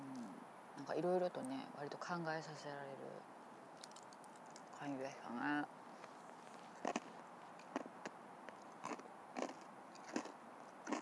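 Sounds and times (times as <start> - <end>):
steady low hiss: 0.0 - 11.0
speech: 0.8 - 3.4, 4.8 - 5.8
crunching rice cracker snacks: 6.8 - 7.9, 8.5 - 11.0.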